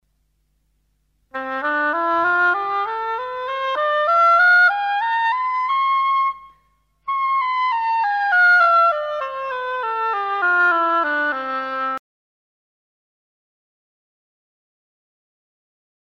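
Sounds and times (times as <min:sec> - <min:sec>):
oboe playing low high low: 0:01.3 - 0:12.0.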